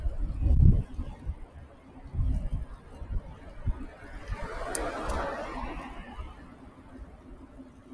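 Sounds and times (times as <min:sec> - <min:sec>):
loud passing car traffic on city road: 0:00.0 - 0:07.9
vehicle passing close by on city road: 0:03.6 - 0:06.6.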